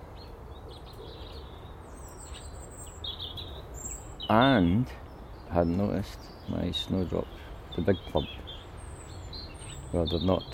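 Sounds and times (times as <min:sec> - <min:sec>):
birds chirping and warbling outdoors on a calm morning: 0:00.0 - 0:10.5
steady low rumble of open air: 0:00.0 - 0:10.5
speech: 0:04.3 - 0:08.3, 0:09.9 - 0:10.5.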